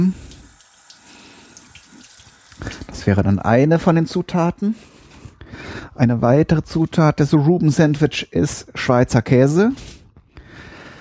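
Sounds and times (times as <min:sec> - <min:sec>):
speech: 0:00.0 - 0:00.2, 0:03.0 - 0:05.0, 0:06.0 - 0:10.0
tap water running onto sauerkraut being rinsed in a sink: 0:00.2 - 0:03.0.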